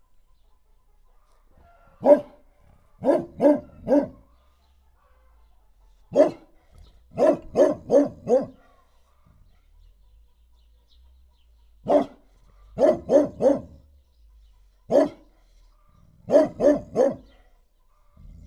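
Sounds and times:
dog in a farmyard: 1.4s - 4.4s, 6.1s - 9.6s, 11.8s - 13.8s, 14.8s - 18.4s.

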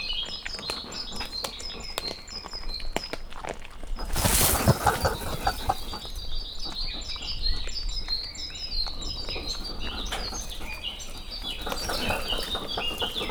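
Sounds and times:
crested porcupines grumbling at each other in a zoo: 0.2s - 2.8s, 3.8s - 13.3s
crested porcupines crunching corn in a zoo: 3.1s - 13.3s.

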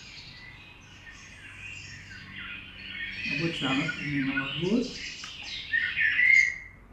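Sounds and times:
male common blackbird singing in a spring garden: 0.0s - 6.9s
speech: 3.2s - 5.1s.

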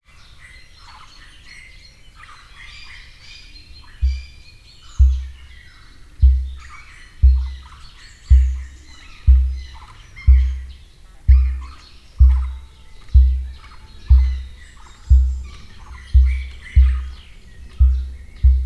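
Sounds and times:
emu at Miskolc zoo: 5.0s - 18.6s.

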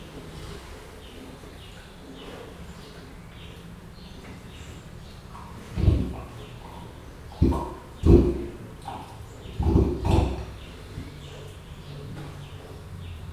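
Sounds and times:
leopard snorting at Jászberény zoo: 2.2s - 12.9s.

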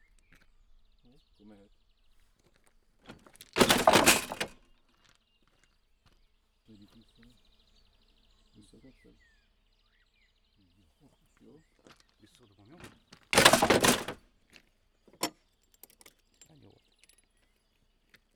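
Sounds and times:
manually operated railway switch being thrown and reset: 3.1s - 4.6s, 12.8s - 14.2s.

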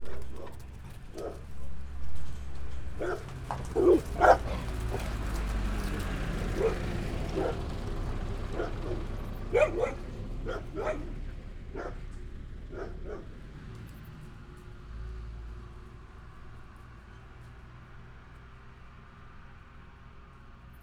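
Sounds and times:
dogs barking at passing vehicles: 0.0s - 14.4s.

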